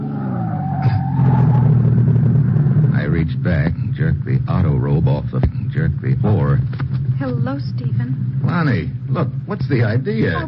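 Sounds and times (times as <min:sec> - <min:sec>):
high tire squeal as a sedan brakes hard: 0:00.0 - 0:03.0
sedan engine rumbling on a bumpy stretch of road in Bavaria: 0:00.0 - 0:10.4
speech: 0:04.2 - 0:06.7, 0:07.3 - 0:10.4.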